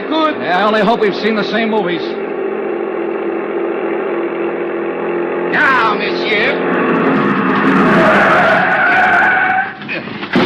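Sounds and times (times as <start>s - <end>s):
car braking and skidding to a stop: 0.0s - 10.4s
speech: 0.1s - 2.2s, 5.5s - 6.8s.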